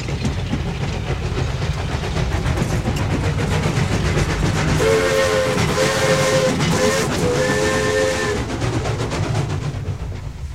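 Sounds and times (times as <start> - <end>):
steam train rumbling and clattering: 0.0 - 10.5
steam locomotive whistle: 4.8 - 8.6.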